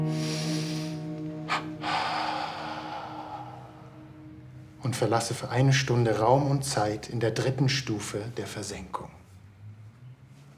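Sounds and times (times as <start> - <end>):
person inhaling deeply beginning meditation: 0.0 - 4.3
steady sustained tonal background: 0.0 - 8.2
speech: 4.8 - 9.2.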